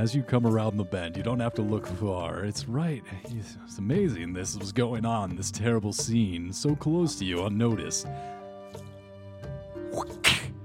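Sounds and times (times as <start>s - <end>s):
speech: 0.0s - 8.4s, 9.9s - 10.3s
whip crack: 10.2s - 10.5s.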